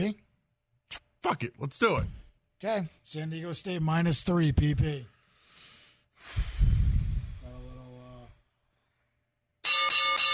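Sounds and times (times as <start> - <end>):
speech: 0.0 - 0.2, 0.9 - 5.1
breathy rumbling noise: 6.2 - 8.4
loud bright bell ringing rapidly: 9.6 - 10.3.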